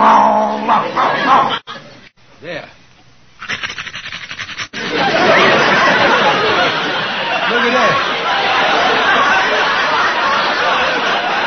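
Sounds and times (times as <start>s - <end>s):
man imitating a dog growling: 0.0s - 0.8s
laughter: 0.8s - 2.1s, 4.8s - 11.4s.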